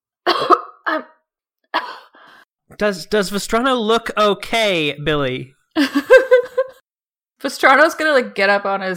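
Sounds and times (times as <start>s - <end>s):
harsh coughs: 0.2s - 0.8s
speech: 0.9s - 1.1s, 2.7s - 6.1s, 7.4s - 8.9s
laughter: 5.8s - 6.8s.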